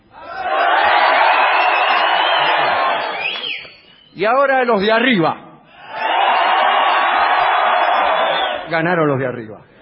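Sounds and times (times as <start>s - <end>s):
audience in the lower seats shouting: 0.1s - 3.4s, 5.8s - 8.7s
speech: 4.2s - 5.4s, 8.7s - 9.7s.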